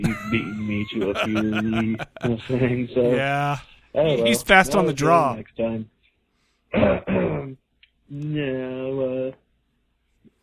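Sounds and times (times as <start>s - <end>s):
throat clearing: 0.0s - 0.5s, 6.7s - 7.6s
laughter: 0.0s - 3.7s
speech: 0.0s - 5.9s, 6.7s - 9.4s.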